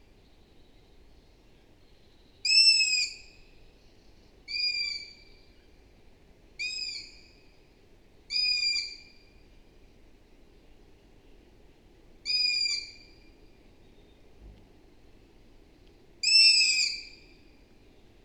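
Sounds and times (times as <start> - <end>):
faint steady hiss: 0.0 - 18.2
Asio otus long-eared owl squeaky calls: 2.4 - 3.2, 4.5 - 5.3, 6.6 - 7.3, 8.3 - 9.2, 12.2 - 13.1, 16.2 - 17.2.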